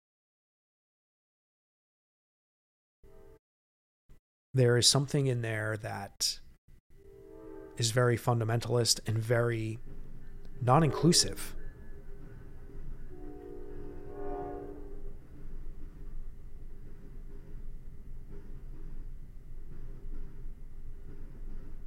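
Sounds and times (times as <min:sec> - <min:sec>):
speech: 0:04.5 - 0:06.4, 0:07.8 - 0:10.0, 0:10.6 - 0:11.6
train horn blast with several harmonic tones: 0:07.0 - 0:08.3, 0:10.6 - 0:12.3, 0:13.0 - 0:15.2
train rumbling past: 0:07.0 - 0:21.8.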